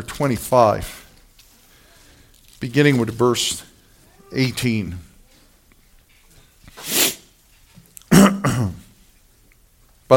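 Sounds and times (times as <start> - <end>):
speech: 0.0 - 1.0, 2.6 - 3.7, 4.3 - 5.1
person clearing throat: 8.1 - 8.9.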